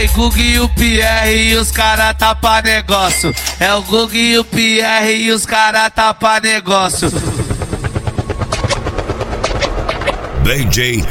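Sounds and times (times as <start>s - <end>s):
speech: 0.0s - 7.4s, 10.5s - 11.1s
helicopter rotor chopping: 0.0s - 11.1s.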